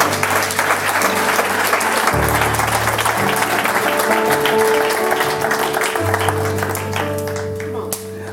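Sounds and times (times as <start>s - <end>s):
church audience applauding: 0.0s - 8.3s
sustained organ-like chords: 0.0s - 8.3s.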